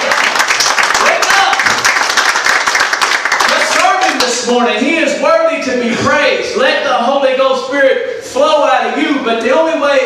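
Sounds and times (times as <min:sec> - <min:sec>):
crowd of people clapping their hands: 0:00.0 - 0:04.6
speech: 0:04.5 - 0:10.0.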